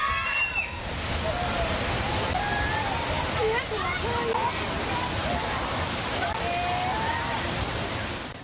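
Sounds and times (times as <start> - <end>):
faint voices: 0.0 - 8.4
rushing flash-flood water at a village in Mae Hong Son province Thailand: 0.0 - 8.4.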